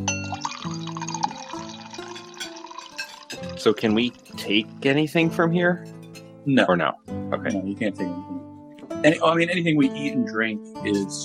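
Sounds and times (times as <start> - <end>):
servant pouring wine into a glass: 0.0 - 4.7
speech: 3.6 - 8.4, 9.0 - 11.2.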